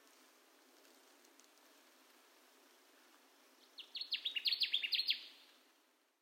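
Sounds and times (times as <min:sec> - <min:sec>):
Connecticut warbler song: 0:03.6 - 0:05.5.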